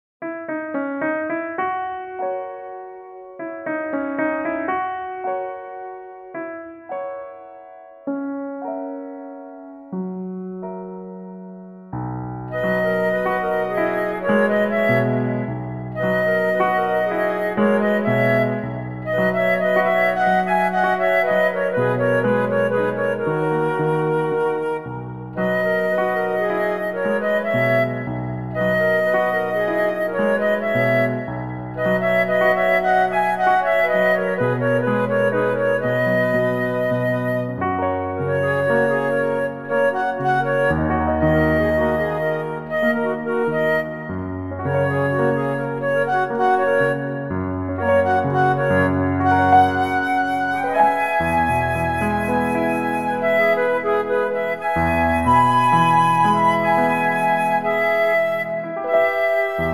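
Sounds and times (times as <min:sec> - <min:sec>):
piano: 0:00.2 - 0:59.7
two flutes: 0:12.4 - 0:59.7.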